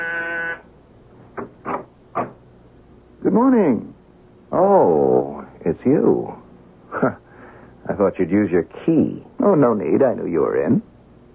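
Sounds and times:
door buzzer: 0.0s - 0.7s
speech: 3.4s - 3.9s, 4.5s - 6.4s, 7.0s - 7.2s, 8.0s - 10.9s.

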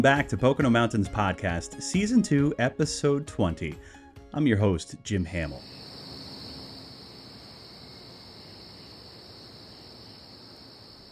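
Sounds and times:
speech: 0.0s - 5.9s
chorus of katydids buzzing at night in the Pocono Mountains: 5.6s - 11.1s.

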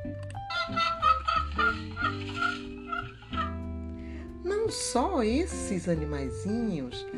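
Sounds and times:
soft music: 0.0s - 7.1s
chicken clucking and squawking: 0.5s - 3.6s
speech: 4.7s - 7.1s.

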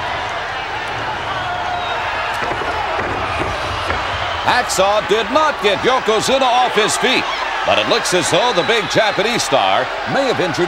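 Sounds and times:
capacity arena crowd cheering: 0.0s - 10.6s
people shouting: 0.0s - 10.6s
thumps: 2.3s - 6.3s
speech: 4.5s - 10.6s.

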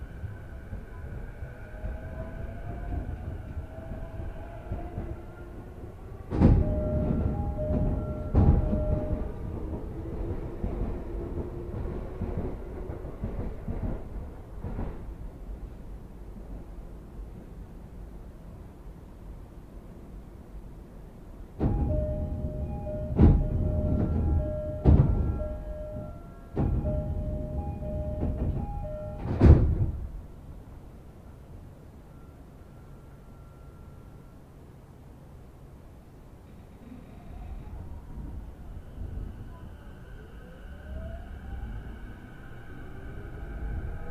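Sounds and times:
train car rumble: 0.0s - 44.0s
two-note chimes: 6.6s - 9.3s, 21.7s - 29.3s.

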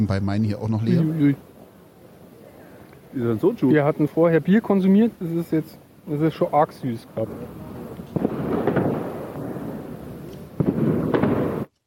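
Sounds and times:
speech: 0.0s - 1.5s, 3.1s - 8.3s
firecrackers going off outdoors in sharp bangs: 0.9s - 11.7s
constant rumbling wash of explosions: 7.0s - 11.7s.

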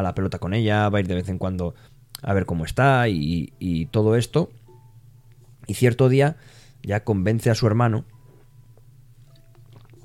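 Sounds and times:
speech: 0.0s - 4.6s, 5.7s - 8.1s
steady low hum: 0.0s - 10.0s
person sipping water with wet clicks and swallows: 9.2s - 10.0s.

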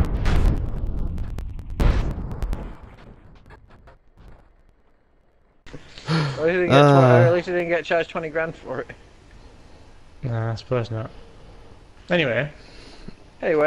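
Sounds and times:
video game explosion: 0.0s - 4.7s
scattered crackling debris: 0.0s - 6.0s
speech: 5.7s - 9.1s, 10.2s - 11.2s, 12.1s - 12.7s, 13.4s - 13.6s.

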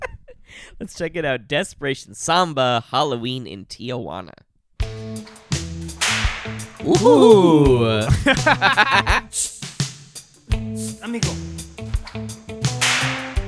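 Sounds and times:
speech: 0.7s - 4.5s, 6.8s - 9.6s, 11.0s - 11.5s
sharp whip cracks in a song intro: 5.9s - 6.8s, 12.7s - 13.4s
laughter: 6.9s - 9.3s.

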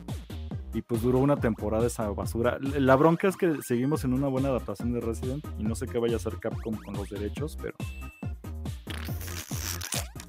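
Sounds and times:
speech: 0.7s - 7.9s
comedic fart sound effect: 8.8s - 10.2s.

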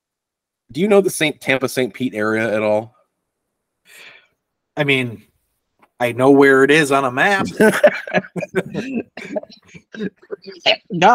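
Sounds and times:
speech: 0.7s - 3.0s, 4.8s - 5.3s, 6.0s - 11.1s
person with emphysema chuckling: 7.2s - 10.7s
rough coughing: 7.3s - 10.6s.

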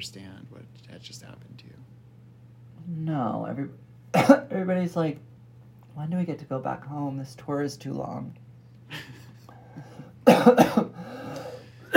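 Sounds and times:
speech: 0.0s - 1.9s, 2.8s - 5.3s, 6.0s - 9.2s, 9.8s - 11.2s
person coughing from an almond skin caught in the throat: 4.1s - 4.5s, 10.2s - 11.9s.

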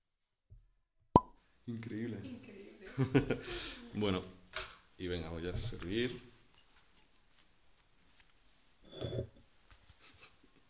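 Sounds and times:
wine cork popping out of a bottle: 1.2s - 1.4s
speech: 1.7s - 4.4s, 5.0s - 6.3s
laughter: 2.2s - 3.9s.

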